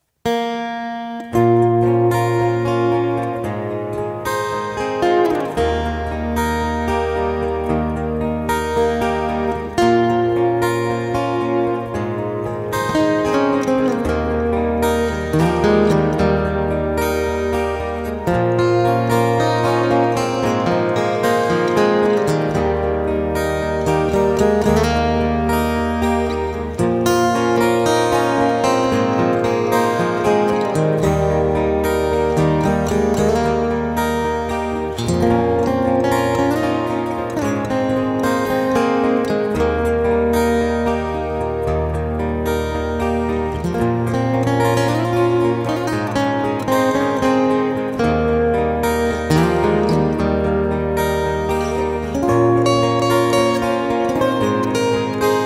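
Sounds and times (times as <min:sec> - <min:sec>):
acoustic guitar playing a cover: 0:00.0 - 0:55.4.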